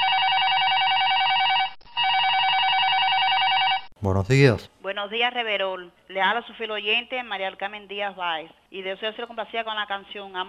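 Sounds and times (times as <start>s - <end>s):
telephone ringing with an incoming call in a radio studio: 0.0s - 3.9s
speech: 4.0s - 10.4s.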